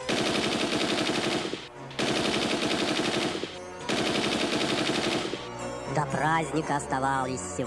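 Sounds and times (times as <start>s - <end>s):
rapid-fire gunshots from an inflatable toy gun: 0.0s - 5.5s
speech: 6.2s - 7.6s.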